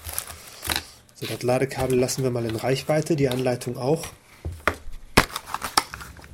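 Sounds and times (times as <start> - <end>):
packaging material from an unboxed mini keyboard crinkling: 0.0 - 3.7, 4.8 - 6.3
speech: 1.2 - 4.2.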